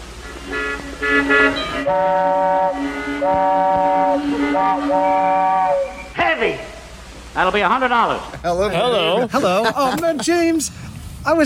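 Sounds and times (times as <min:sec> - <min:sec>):
car horns honking: 0:00.0 - 0:06.9
low rumble of heavy traffic: 0:00.0 - 0:11.4
speech: 0:01.1 - 0:02.5, 0:07.4 - 0:11.4
laughter: 0:08.3 - 0:10.7.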